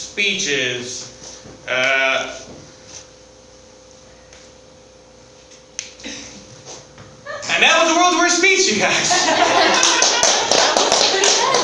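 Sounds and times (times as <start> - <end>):
steady noisy background: 0.0 - 11.6
speech: 0.2 - 2.6, 7.6 - 10.0
laughter: 8.7 - 11.6
light polite golf claps from a team: 9.6 - 11.6.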